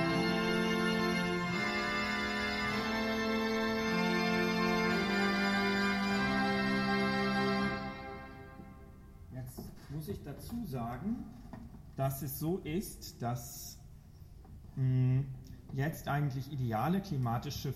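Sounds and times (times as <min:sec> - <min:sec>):
out-of-tune pipe organ reed stops played together in a sustained chord: 0:00.0 - 0:09.3
speech: 0:10.5 - 0:13.8, 0:14.8 - 0:17.7.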